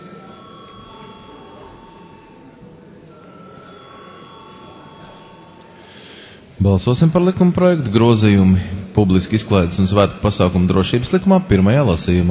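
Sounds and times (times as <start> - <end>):
parliament voting electric bell ringing: 0.0 - 6.3
murmuring room in a parliament session: 0.0 - 12.2
speech: 6.6 - 12.2.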